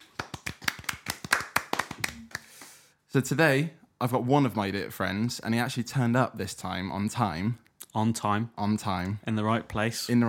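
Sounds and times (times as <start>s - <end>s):
hand clapping: 0.0s - 2.9s
speech: 3.1s - 10.2s.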